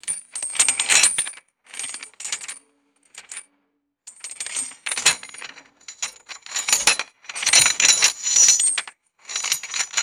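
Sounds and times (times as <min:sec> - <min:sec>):
heavy metal chains clanking and shifting: 0:04.4 - 0:10.0.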